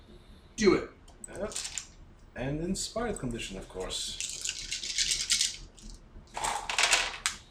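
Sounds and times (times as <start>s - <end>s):
speech: 0.6s - 1.8s, 2.4s - 4.3s
six dice rolled in a tabletop role-playing game: 1.4s - 1.9s, 3.1s - 7.4s.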